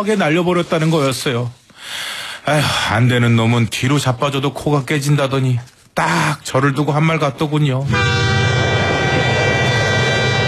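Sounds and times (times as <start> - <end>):
speech: 0.0 - 8.3
distant train rumbling past: 7.9 - 10.4.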